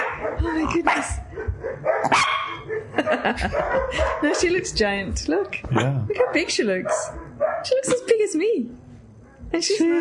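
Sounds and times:
dogs barking with sharp yips and woofs: 0:00.0 - 0:04.8, 0:05.7 - 0:07.9
speech: 0:00.4 - 0:02.4, 0:03.0 - 0:08.8, 0:09.5 - 0:09.9.

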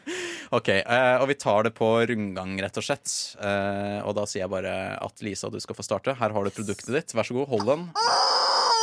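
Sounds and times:
speech: 0:00.5 - 0:08.4
squeezed rubber chicken toy squawking: 0:08.0 - 0:08.8.

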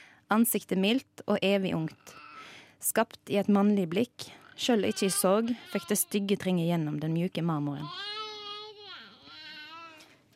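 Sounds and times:
speech: 0:00.3 - 0:02.2, 0:02.8 - 0:08.1
baby crying: 0:02.0 - 0:02.5, 0:04.5 - 0:06.3, 0:07.8 - 0:10.1.

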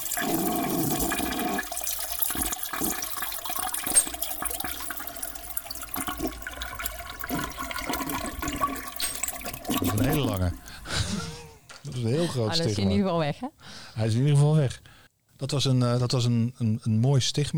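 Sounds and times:
toilet flush with water swirling, gurgling and draining: 0:00.0 - 0:11.3
laughter: 0:10.8 - 0:13.0
speech: 0:12.4 - 0:17.5.

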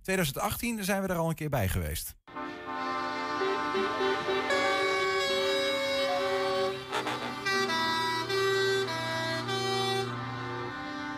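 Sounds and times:
speech: 0:00.0 - 0:02.4
truck air horns blaring at a truck run in Twente: 0:02.3 - 0:11.1.

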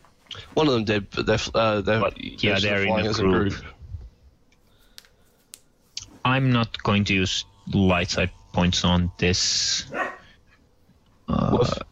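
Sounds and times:
speech: 0:00.6 - 0:03.8, 0:06.3 - 0:10.0, 0:11.5 - 0:11.9
dog barking: 0:09.9 - 0:10.3.

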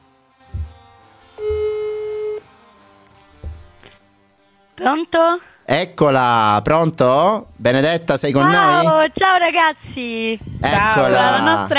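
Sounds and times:
soft low thumps: 0:00.6 - 0:02.1, 0:03.4 - 0:03.8
phone ringback tone on an outgoing call: 0:01.4 - 0:02.4
speech: 0:04.8 - 0:11.7.

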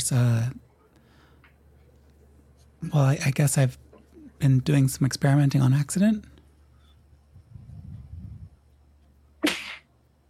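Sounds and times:
speech: 0:00.1 - 0:00.6, 0:02.8 - 0:03.8, 0:04.4 - 0:06.3
person sneezing: 0:09.4 - 0:09.9.

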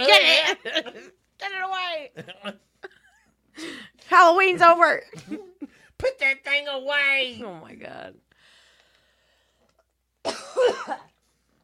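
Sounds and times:
speech: 0:00.0 - 0:02.7, 0:03.6 - 0:08.2, 0:10.2 - 0:11.1
harsh rasping coughs: 0:10.2 - 0:11.2.

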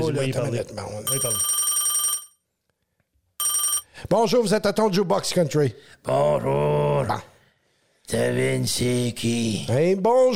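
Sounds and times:
speech: 0:00.0 - 0:01.6, 0:04.1 - 0:07.3, 0:08.1 - 0:10.3
electronic telephone ringing: 0:01.1 - 0:02.4, 0:03.4 - 0:03.9.

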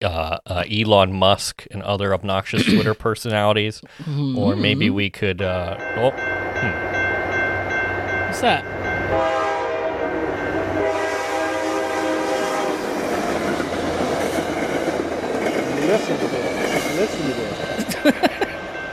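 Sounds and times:
speech: 0:00.0 - 0:06.8, 0:08.3 - 0:09.4, 0:15.9 - 0:18.4
laughter: 0:02.5 - 0:03.0, 0:04.4 - 0:05.0, 0:17.8 - 0:18.6
train rumbling past: 0:05.6 - 0:18.9
train horn blaring in long sustained tones: 0:09.0 - 0:13.0.

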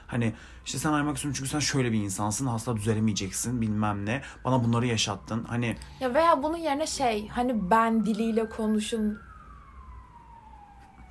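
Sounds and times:
ambulance siren wailing: 0:00.0 - 0:11.0
speech: 0:00.1 - 0:09.3.

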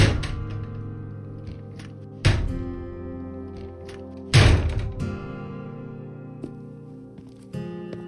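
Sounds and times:
door slammed shut with heavy bang and low ringing rumble: 0:00.0 - 0:00.9, 0:01.8 - 0:02.8, 0:04.3 - 0:05.2.

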